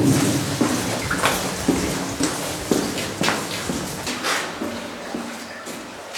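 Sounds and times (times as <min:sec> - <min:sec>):
water dripping from a granite tunnel station ceiling after rain: 0:00.0 - 0:05.5.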